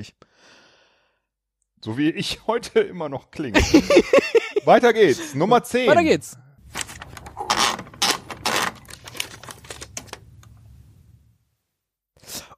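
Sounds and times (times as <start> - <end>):
speech: 0.0 - 0.6, 1.8 - 6.4
laughter: 3.6 - 5.5
sheet of paper wound into a typewriter: 6.7 - 10.2.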